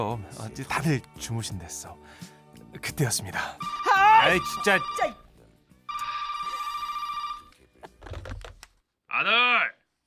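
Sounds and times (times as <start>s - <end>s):
speech: 0.0s - 5.2s
telephone ringing with an electronic trill in a guest room: 3.6s - 5.3s, 5.9s - 7.6s.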